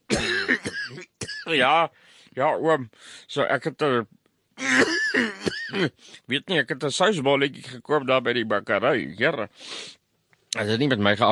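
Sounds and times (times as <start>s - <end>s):
person clearing throat: 0.0s - 1.6s, 4.6s - 6.0s
person coughing: 0.1s - 1.6s, 4.6s - 6.0s
speech: 0.5s - 0.8s, 1.5s - 11.3s.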